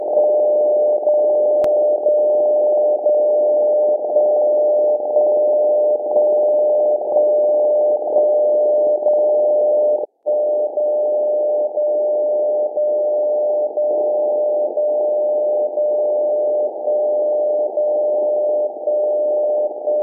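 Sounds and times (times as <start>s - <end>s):
77.5 kHz time signal: 0.0s - 20.0s.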